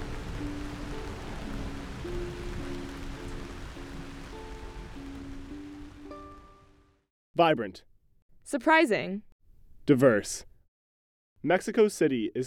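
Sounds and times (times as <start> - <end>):
steady rain pattering on a roof: 0.0 - 6.8
soft gentle melody of sustained tones: 0.0 - 7.0
speech: 7.4 - 7.9, 8.5 - 9.3, 9.9 - 10.5, 11.4 - 12.4.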